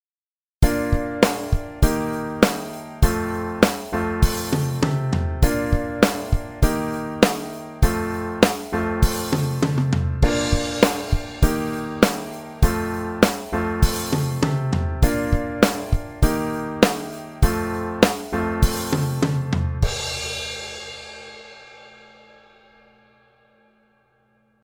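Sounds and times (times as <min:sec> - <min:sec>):
rock piano chords: 0:00.6 - 0:21.2
drums: 0:00.6 - 0:23.2.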